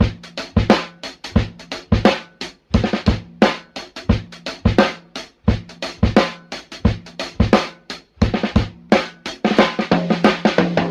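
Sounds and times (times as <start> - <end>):
sloppy funk drum loops: 0.0 - 10.8.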